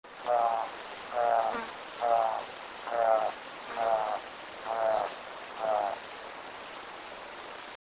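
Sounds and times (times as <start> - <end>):
spot billed toucanet: 0.3 - 6.0.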